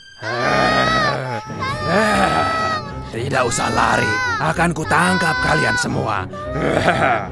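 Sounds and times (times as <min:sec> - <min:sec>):
speech: 0:00.2 - 0:00.5, 0:03.2 - 0:07.3
several voices imitating young goats screaming in panic: 0:00.2 - 0:07.3
laughter: 0:00.3 - 0:04.2, 0:06.5 - 0:07.3.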